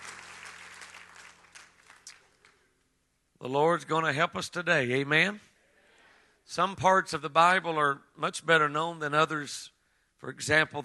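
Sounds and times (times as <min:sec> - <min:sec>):
church audience clapping: 0:00.0 - 0:02.8
speech: 0:03.4 - 0:05.5, 0:06.5 - 0:10.8.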